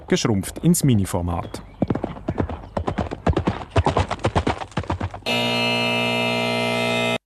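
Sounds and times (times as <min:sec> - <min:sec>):
horse hoofbeats clattering: 0:00.0 - 0:05.3
speech: 0:00.1 - 0:01.8
loud steady electronic buzz: 0:05.3 - 0:07.2.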